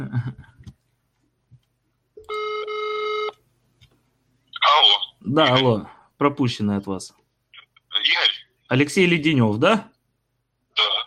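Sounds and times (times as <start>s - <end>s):
speech: 0.0s - 0.6s, 5.3s - 7.2s, 8.0s - 9.9s
ringback tone of an outgoing phone call: 2.2s - 3.4s.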